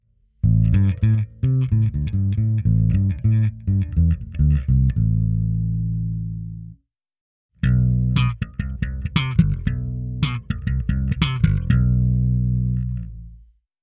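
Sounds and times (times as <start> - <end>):
clean DI bass through Behringer V-Tone: 0.0 - 6.8, 7.6 - 13.5.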